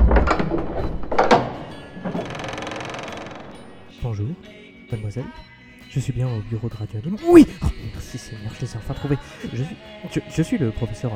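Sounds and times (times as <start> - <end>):
door opening with latch and heavy hinge thunks in an audio drama: 0.0 - 3.9
speech: 4.1 - 11.1.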